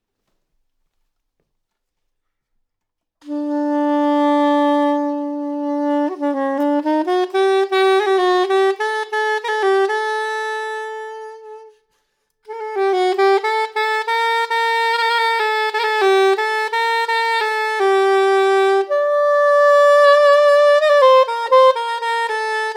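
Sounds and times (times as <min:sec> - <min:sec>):
soprano saxophone: 0:03.2 - 0:22.7.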